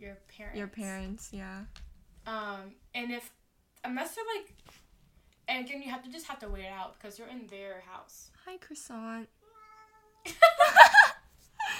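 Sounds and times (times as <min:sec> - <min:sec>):
speech: 0:00.0 - 0:04.8, 0:05.5 - 0:09.4, 0:10.2 - 0:10.9
cat meowing: 0:09.4 - 0:10.2.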